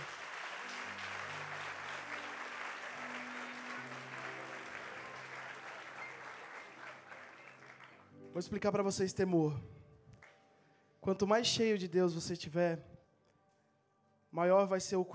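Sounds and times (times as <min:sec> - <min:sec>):
dense audience applause: 0:00.0 - 0:08.1
speech: 0:08.4 - 0:09.8, 0:11.1 - 0:12.9, 0:14.3 - 0:15.1.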